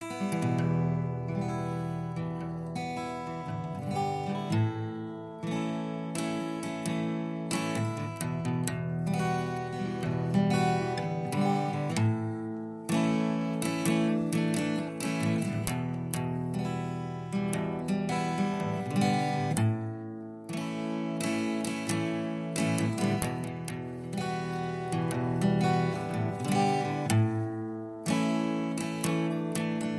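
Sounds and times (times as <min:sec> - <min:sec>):
breathy guitar sound: 0:00.0 - 0:29.9.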